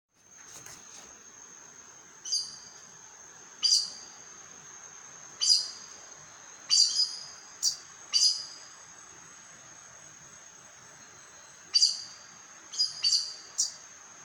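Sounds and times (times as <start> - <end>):
faint continuous hiss: 0.1 - 14.2
aracari giving sharp high squeaky calls: 3.6 - 4.0, 5.4 - 5.9, 6.7 - 8.6, 11.7 - 13.8.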